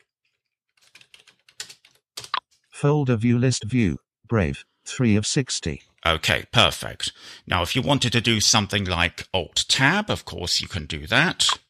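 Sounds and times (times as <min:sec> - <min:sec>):
typing on a computer keyboard: 0:00.8 - 0:02.4
speech: 0:02.8 - 0:11.6.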